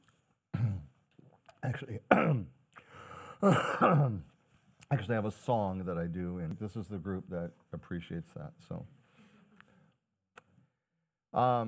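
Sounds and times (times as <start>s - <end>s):
person clearing throat after a cold: 0.6s - 0.9s, 2.1s - 2.5s, 3.4s - 4.3s
speech: 1.6s - 2.6s, 3.4s - 4.3s, 4.9s - 9.0s, 11.3s - 11.6s.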